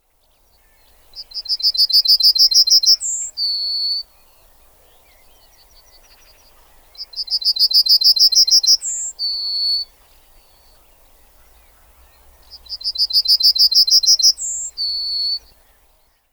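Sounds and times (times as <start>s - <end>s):
yellowhammer singing: 0.4s - 11.1s, 12.1s - 15.8s.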